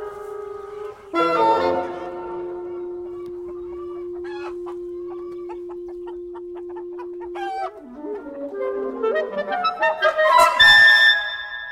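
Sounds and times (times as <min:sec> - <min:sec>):
turkeys calling on a farm: 0:00.0 - 0:11.3.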